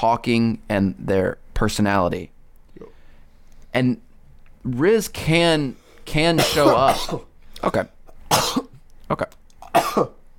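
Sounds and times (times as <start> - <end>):
speech: 0.0 - 2.9, 3.7 - 9.4, 10.0 - 10.2
person coughing harshly: 6.4 - 7.3, 8.1 - 8.8, 9.6 - 10.2.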